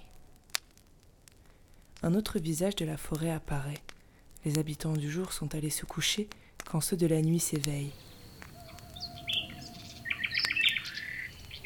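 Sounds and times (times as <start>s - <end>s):
speech: 2.0s - 8.1s
bright twittering bird calls: 7.9s - 11.6s.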